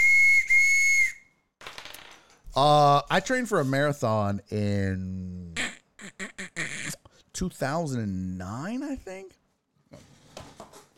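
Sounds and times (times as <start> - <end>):
loud shrill train whistle: 0.0 - 1.3
speech: 2.6 - 5.6, 7.4 - 9.2.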